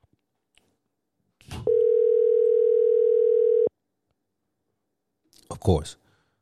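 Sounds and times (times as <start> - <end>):
phone line ringing tone of an unanswered call: 1.7 - 3.7.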